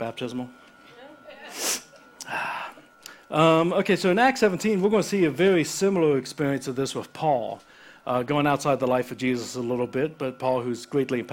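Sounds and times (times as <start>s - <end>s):
speech: 0.0s - 0.7s, 3.3s - 11.3s
sniffs through a congested nose: 1.4s - 2.6s.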